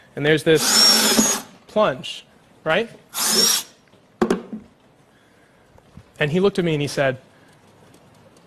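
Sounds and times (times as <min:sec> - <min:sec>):
speech: 0:00.2 - 0:03.6, 0:06.2 - 0:07.3
power drill drilling through a wall: 0:00.6 - 0:01.5, 0:03.1 - 0:03.8.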